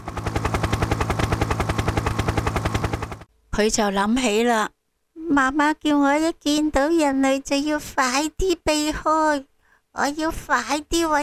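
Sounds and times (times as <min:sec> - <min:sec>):
helicopter rotor chopping on a rescue mission: 0:00.0 - 0:03.3
speech: 0:03.6 - 0:11.2.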